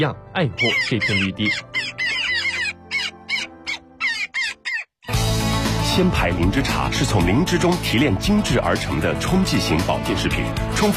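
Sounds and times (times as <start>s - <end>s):
speech: 0.0s - 1.9s, 6.0s - 10.9s
Daurian jackdaw calling: 0.5s - 5.2s.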